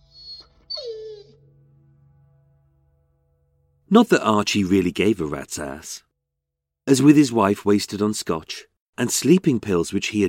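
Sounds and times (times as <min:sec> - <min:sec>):
red setter puppy whimpering: 0:00.1 - 0:01.4
speech: 0:03.9 - 0:06.1, 0:06.9 - 0:10.2.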